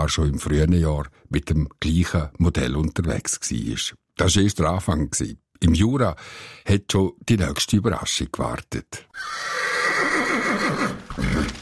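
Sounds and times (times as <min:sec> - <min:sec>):
speech: 0:00.0 - 0:11.6
horse pulling a carriage neighing: 0:09.1 - 0:11.6.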